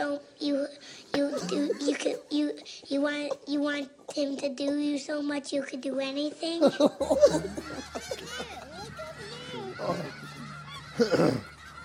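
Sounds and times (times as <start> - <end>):
speech: 1.4 - 8.5, 11.0 - 11.5
faint laughter-like sounds: 6.7 - 11.8
geese honking from a played meme: 7.3 - 11.8.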